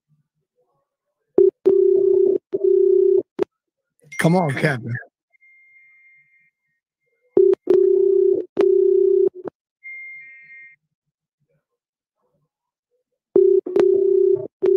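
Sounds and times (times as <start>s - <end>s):
telephone line electronic ringback tone: 1.4s - 3.2s, 7.4s - 9.3s, 13.4s - 14.7s
speech: 4.2s - 5.1s.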